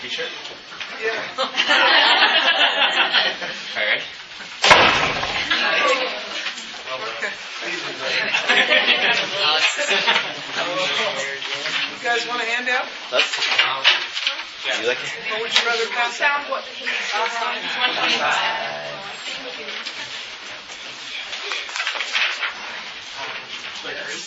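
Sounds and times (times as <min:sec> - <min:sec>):
speech: 0:00.1 - 0:02.5, 0:07.6 - 0:19.3
people chuckling lightly: 0:01.4 - 0:04.0, 0:08.0 - 0:10.6
door slamming shut: 0:04.6 - 0:05.6
room full of murmuring voices: 0:05.2 - 0:12.0, 0:14.2 - 0:22.2.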